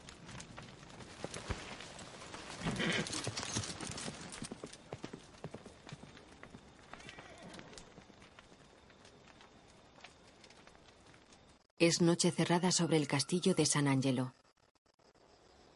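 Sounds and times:
horse hooves clopping as a horse is ridden out of a courtyard: 0.0 - 11.6
continuous rustling: 0.0 - 11.7
speech: 11.8 - 14.4.

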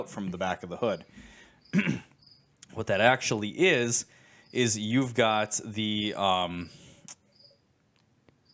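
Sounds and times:
speech: 0.0 - 2.1, 2.7 - 6.8
cricket chirping indoors: 0.8 - 2.7, 3.7 - 5.1, 6.6 - 7.7.

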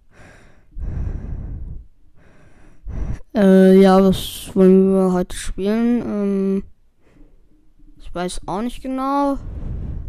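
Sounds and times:
heavy breathing into a microphone: 0.0 - 3.3, 9.4 - 10.0
speech: 3.4 - 6.7, 8.1 - 9.6.

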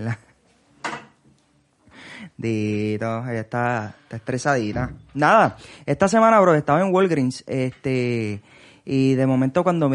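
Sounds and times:
speech: 0.0 - 0.3, 2.2 - 9.9
door closing: 4.5 - 5.5.

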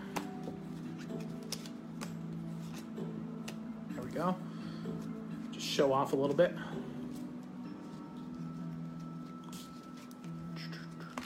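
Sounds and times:
steady low musical hum: 0.0 - 11.2
deck of tarot cards being shuffled: 0.1 - 3.6, 9.0 - 11.2
speech: 4.0 - 6.9.

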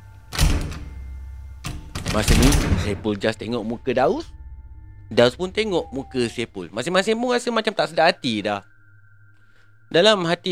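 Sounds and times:
door rattling and thumping as it is pushed open: 0.3 - 3.2
speech: 2.1 - 4.4, 5.1 - 8.7, 9.9 - 10.5.

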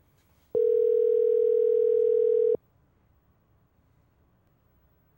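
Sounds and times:
telephone ringback tone: 0.6 - 2.6.

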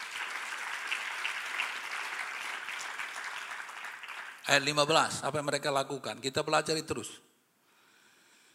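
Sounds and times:
crowd applauding: 0.0 - 4.8
speech: 4.5 - 7.3.

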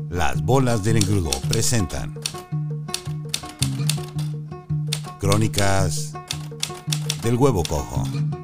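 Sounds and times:
speech: 0.2 - 2.5, 5.2 - 6.2, 7.2 - 8.3
typewriter keys clacking: 0.9 - 2.4, 3.3 - 4.3, 5.0 - 8.1.

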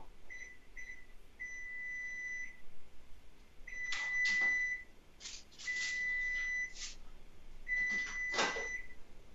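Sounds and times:
kitchen appliance timer beeping: 0.3 - 2.6, 3.7 - 4.9, 5.6 - 6.9, 7.7 - 9.0.

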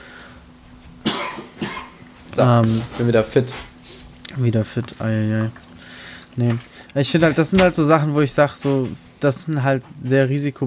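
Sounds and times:
quiet hum: 0.0 - 10.6
person coughing forcefully: 1.0 - 2.0
speech: 2.4 - 3.7, 4.4 - 5.6, 6.4 - 10.6.

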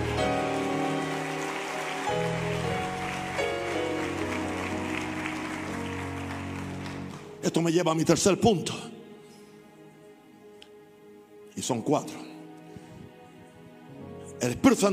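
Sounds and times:
large crowd at a religious service clapping loudly: 0.0 - 7.6
speech: 7.4 - 9.0, 11.7 - 12.3, 14.4 - 14.9.

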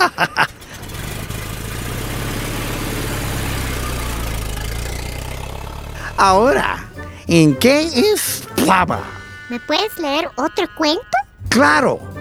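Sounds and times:
laughter: 0.0 - 1.0, 3.2 - 12.1
car engine starting and running as the car pulls away: 0.0 - 12.1
speech: 0.1 - 0.5, 6.2 - 12.1.

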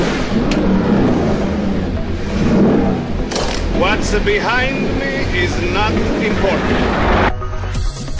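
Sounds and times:
small car, a 500, accelerating in Italian-style driving: 0.0 - 7.3
road noise: 0.0 - 8.1
speech: 4.1 - 7.3.

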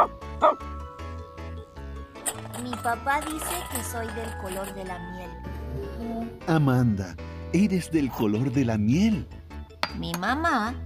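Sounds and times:
small dog barking and yipping: 0.0 - 0.7
speech: 2.8 - 10.8.

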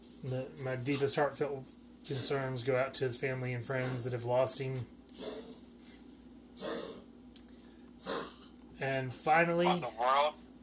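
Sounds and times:
speech: 0.2 - 5.4, 8.8 - 10.5
dog coughing: 5.2 - 5.6, 6.6 - 7.1, 8.0 - 8.5.

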